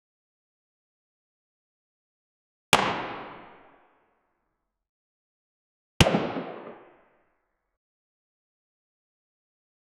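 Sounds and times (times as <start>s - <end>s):
arrow shot: 2.8s - 3.9s, 6.0s - 7.2s.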